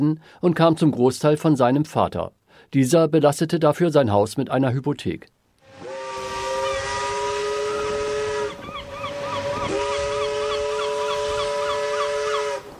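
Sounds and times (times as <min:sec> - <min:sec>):
speech: 0:00.0 - 0:05.4
steamship whistle blowing: 0:05.6 - 0:12.7.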